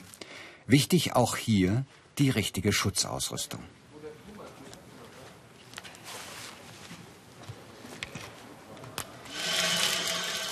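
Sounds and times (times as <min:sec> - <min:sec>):
speech: 0:00.7 - 0:03.8
water-cooled core drill boring a hole through 12 cm thick wall: 0:09.3 - 0:10.5.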